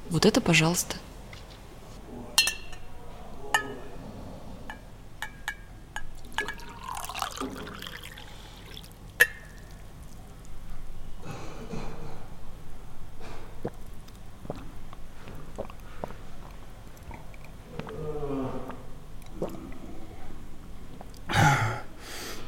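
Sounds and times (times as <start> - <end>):
speech: 0.1 - 1.1
glass clinking: 2.4 - 3.8, 4.7 - 8.2, 9.2 - 9.8
person gulping water: 6.2 - 10.2, 13.4 - 21.9
water poured into a glass with a rising gurgle: 6.2 - 10.2.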